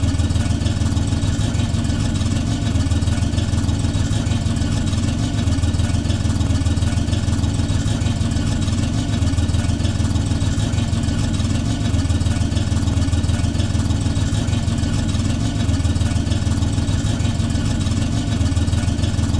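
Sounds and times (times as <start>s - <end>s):
limousine engine idling: 0.0s - 19.3s.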